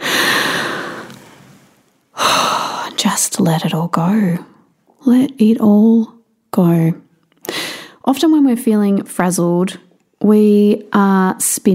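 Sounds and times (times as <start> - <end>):
big deep breath: 0.0 - 3.0, 7.4 - 8.0
speech: 3.0 - 7.0, 8.0 - 11.7.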